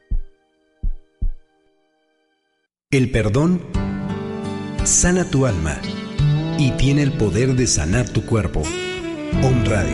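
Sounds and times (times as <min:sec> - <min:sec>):
deep heartbeat thumps: 0:00.0 - 0:01.5
speech: 0:02.9 - 0:03.8, 0:04.9 - 0:06.0, 0:06.6 - 0:09.9.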